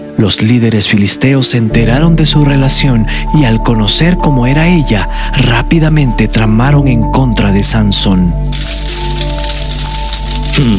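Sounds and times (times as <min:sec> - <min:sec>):
speech: 0:00.2 - 0:09.0, 0:10.6 - 0:10.7
silver coins clinking and jingling: 0:08.5 - 0:10.7.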